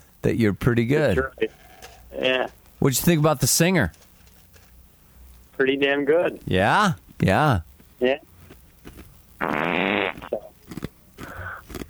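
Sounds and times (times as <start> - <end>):
speech: 0.2 - 4.1, 5.6 - 8.3, 9.4 - 9.7
fart into the microphone: 8.9 - 11.8.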